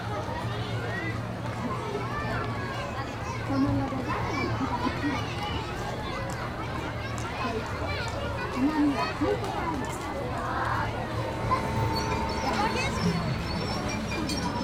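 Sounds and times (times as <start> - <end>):
crowd chatter in an amusement park: 0.0 - 14.6
low hum: 10.4 - 14.6
bright tonal sound: 11.1 - 14.6.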